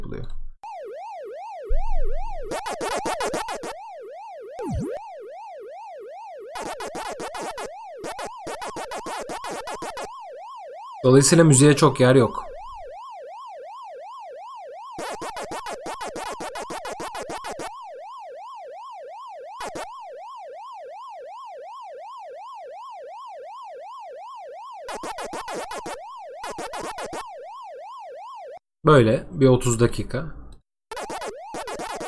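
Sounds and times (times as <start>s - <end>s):
sound-card-style synthetic glissando tone rising in pitch: 1.7s - 3.8s, 4.6s - 5.1s
speech: 11.0s - 12.5s, 28.9s - 30.4s.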